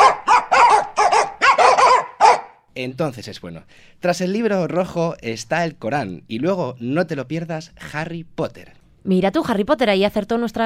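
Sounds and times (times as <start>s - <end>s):
dogs barking: 0.0s - 2.6s
speech: 2.8s - 10.6s.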